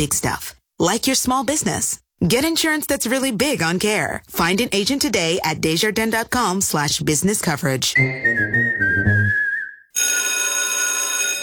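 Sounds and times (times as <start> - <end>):
speech: 0.0 - 8.9
whistle-like tone: 8.0 - 10.0
loud electric college school bell ringing: 10.0 - 11.4.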